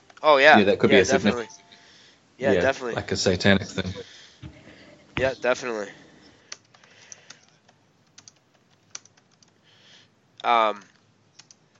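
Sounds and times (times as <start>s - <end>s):
speech: 0.2s - 1.6s, 2.4s - 4.1s, 5.2s - 6.0s, 10.4s - 10.9s
typing on a computer keyboard: 6.5s - 9.6s, 11.3s - 11.7s.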